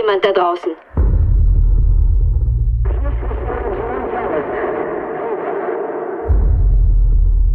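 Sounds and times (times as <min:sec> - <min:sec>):
speech: 0:00.0 - 0:00.9
deep rumble: 0:01.0 - 0:07.5
crackling radio interference with garbled static and warbling noise: 0:02.9 - 0:06.2.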